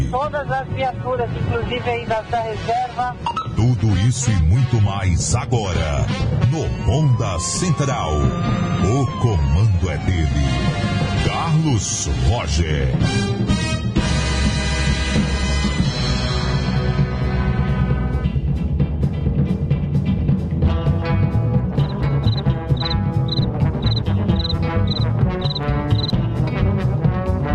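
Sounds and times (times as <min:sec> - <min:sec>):
speech: 0:00.1 - 0:13.6
loud busy music: 0:00.9 - 0:27.4
cricket chirping in a radio studio: 0:21.8 - 0:26.1.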